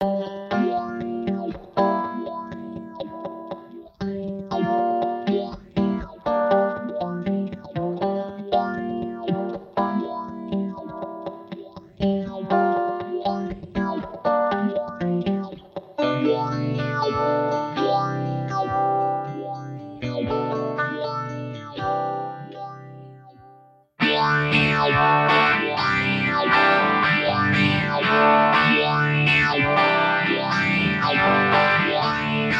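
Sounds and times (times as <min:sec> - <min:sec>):
guitars through a phaser effect: 0:00.0 - 0:23.4, 0:24.0 - 0:32.5.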